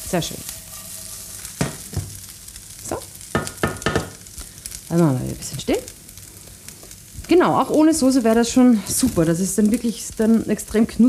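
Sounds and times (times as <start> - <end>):
tofu nuggets frying in oil in a pan: 0.0 - 11.0
speech: 0.1 - 0.5, 4.9 - 6.0, 7.3 - 11.0.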